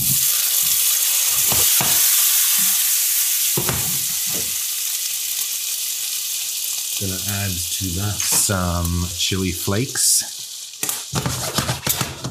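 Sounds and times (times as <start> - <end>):
chopped tomatoes sizzling in a pan with garlic: 0.0 - 12.2
speech: 7.0 - 10.4
low knocks and scrapes of stirring in a pan: 10.8 - 12.2.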